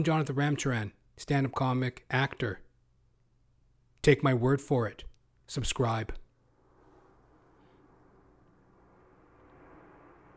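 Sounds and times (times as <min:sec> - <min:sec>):
speech: 0:00.0 - 0:02.6, 0:04.0 - 0:06.2
jet aircraft roaring overhead: 0:06.5 - 0:10.3.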